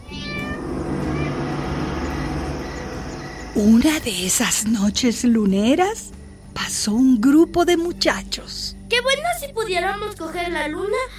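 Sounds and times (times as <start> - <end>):
cat yowling a courting call: 0.0 - 2.3
speech: 3.6 - 11.1.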